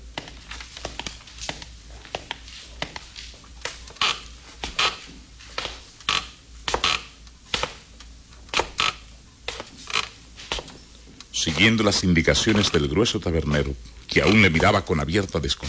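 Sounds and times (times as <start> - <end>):
footsteps climbing creaking worm-eaten old wooden stairs: 0.0 - 7.8, 8.5 - 13.0
speech: 11.4 - 15.6.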